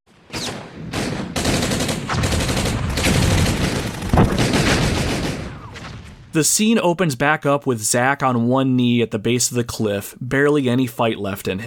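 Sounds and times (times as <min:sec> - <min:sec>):
battle gunfire: 0:00.3 - 0:06.3
speech: 0:06.3 - 0:11.6.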